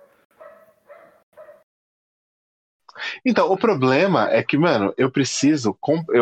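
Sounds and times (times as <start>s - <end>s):
dog barking: 0.0s - 1.6s
speech: 3.0s - 6.2s.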